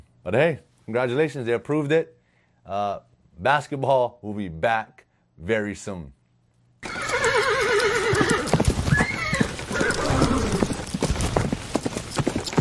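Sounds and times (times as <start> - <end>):
speech: 0.2 - 6.2
horse whinnying: 6.8 - 11.1
horse hooves clip-clopping: 6.8 - 12.6
horse snorting: 7.2 - 11.3.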